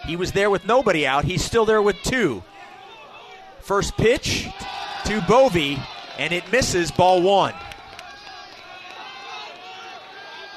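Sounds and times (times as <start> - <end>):
ballpark crowd noise: 0.0 - 10.5
cheering and shouting at a ballpark: 0.0 - 10.5
speech: 0.1 - 2.5, 3.6 - 7.6
overlapping voices at a ballpark: 4.1 - 10.5.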